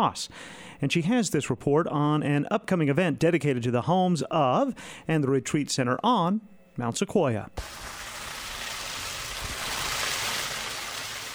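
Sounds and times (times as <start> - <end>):
speech: 0.0 - 8.0
water falling on stone at a home on Skyline Drive on Mount Sequoia in Fayetteville: 7.6 - 11.3.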